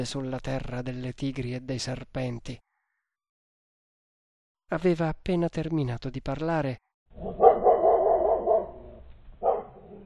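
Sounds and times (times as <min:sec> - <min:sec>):
speech: 0:00.0 - 0:02.7, 0:04.7 - 0:07.4
dog howling: 0:07.2 - 0:10.0.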